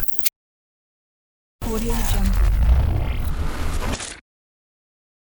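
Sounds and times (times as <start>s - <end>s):
futuristic transforming sound: 1.6s - 4.2s.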